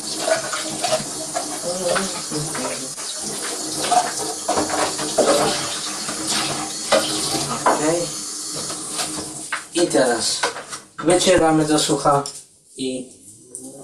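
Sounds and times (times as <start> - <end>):
rinsing a part under running tap water: 0.0 - 9.5
tap water running: 0.0 - 10.6
speech: 2.0 - 2.7, 9.8 - 13.2.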